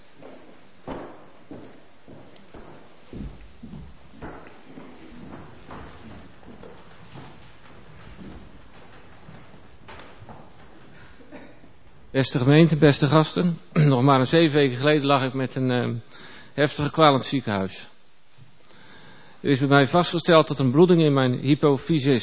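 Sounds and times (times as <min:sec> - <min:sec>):
man's footsteps on a hard floor walking to the front of an audience: 0:00.0 - 0:12.1
speech: 0:12.2 - 0:17.9, 0:19.4 - 0:22.2.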